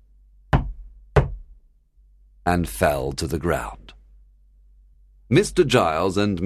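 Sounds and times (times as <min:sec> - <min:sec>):
firm knocks on the wooden door of a country house: 0:00.5 - 0:01.6
speech: 0:02.4 - 0:03.9, 0:05.3 - 0:06.4.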